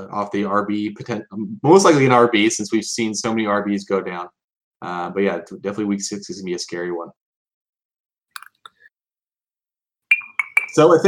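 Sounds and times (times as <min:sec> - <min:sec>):
speech: 0:00.0 - 0:07.2, 0:10.8 - 0:11.0
beer glass clinking: 0:08.4 - 0:08.9, 0:10.1 - 0:11.0
emptied beer glass knocking and rattling: 0:10.1 - 0:10.9.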